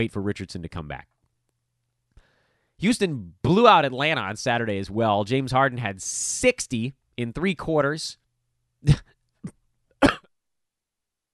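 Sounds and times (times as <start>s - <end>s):
speech: 0.0s - 1.2s, 2.8s - 8.2s, 8.8s - 9.6s
person coughing: 8.8s - 10.3s.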